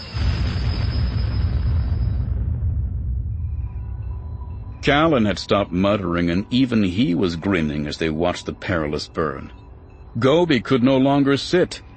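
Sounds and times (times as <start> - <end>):
starfighter exploding under droid fire: 0.0 - 5.0
speech: 4.9 - 9.6, 10.2 - 11.9.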